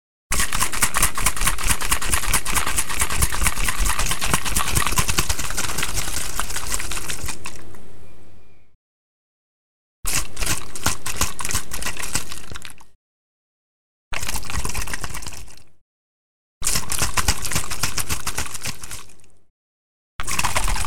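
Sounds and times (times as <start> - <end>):
liquid sloshing in a bottle being shaken: 0.3 - 7.8, 10.1 - 13.0, 14.2 - 15.8, 16.6 - 19.4, 20.2 - 20.8.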